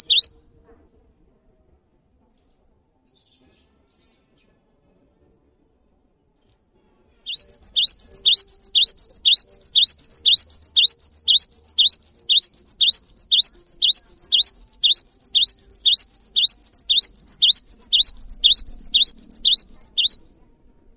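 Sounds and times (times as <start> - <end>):
Cinereous tit ringing two-part whistled song phrases: 0.0 - 0.3, 7.3 - 20.2.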